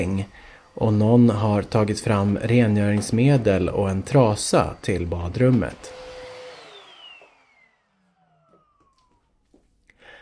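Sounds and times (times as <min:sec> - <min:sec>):
speech: 0:00.0 - 0:06.0
vacuum cleaner roaring and winding down: 0:00.0 - 0:09.6.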